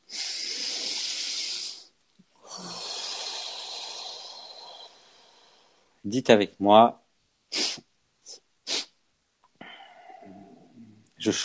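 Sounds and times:
slow deep breath during breathing exercise: 0:00.1 - 0:06.0, 0:09.6 - 0:10.8
speech: 0:06.0 - 0:07.0, 0:11.2 - 0:11.4.

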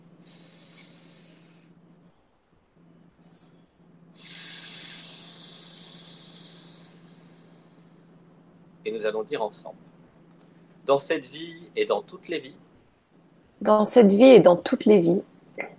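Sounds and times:
low steady hum: 0:00.0 - 0:15.7
slow deep breath in and long airy exhale: 0:00.2 - 0:01.8, 0:04.2 - 0:08.2
speech: 0:08.8 - 0:09.9, 0:10.9 - 0:12.6, 0:13.6 - 0:15.7.

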